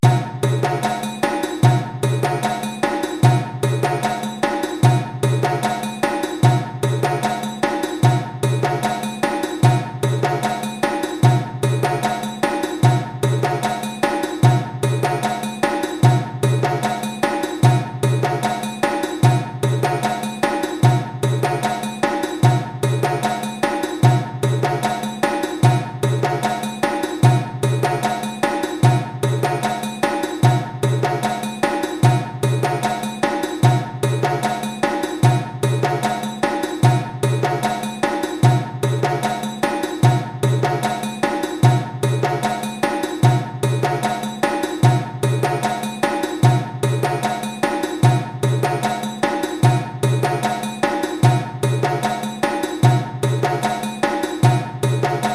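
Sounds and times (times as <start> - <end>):
djembe groove: 0.0 - 55.3.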